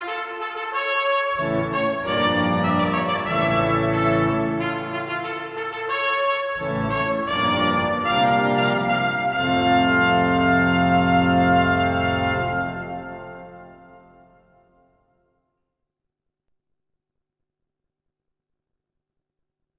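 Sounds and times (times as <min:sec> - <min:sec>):
instrumental trumpet playing: 0:00.0 - 0:14.8.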